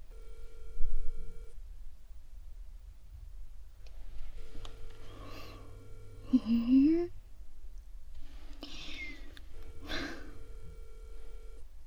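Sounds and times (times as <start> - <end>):
electronic ringing tone of an unanswered outgoing call: 0.1 - 1.5, 4.3 - 6.7, 9.4 - 11.6.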